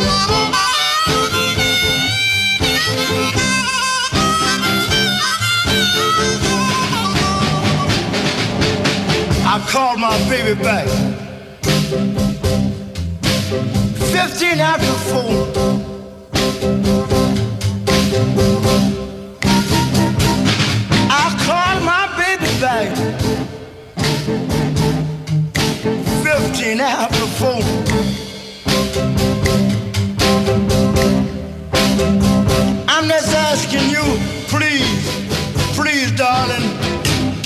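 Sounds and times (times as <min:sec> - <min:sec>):
blues band recording playing out of tune: 0:00.0 - 0:37.4
speech: 0:09.7 - 0:11.3, 0:13.5 - 0:15.9.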